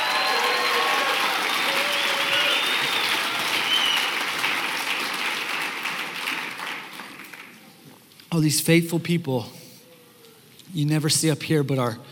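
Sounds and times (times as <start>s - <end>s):
faint whoops and voices: 0.0s - 4.1s
dense applause from a large crowd: 0.0s - 7.7s
speech: 8.4s - 9.6s, 10.8s - 12.1s.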